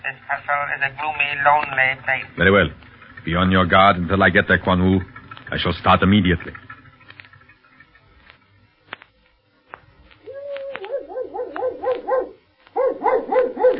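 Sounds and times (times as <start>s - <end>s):
speech: 0.1s - 6.6s
faint clicks: 6.5s - 12.8s
dog barking short yappy barks: 10.9s - 13.7s.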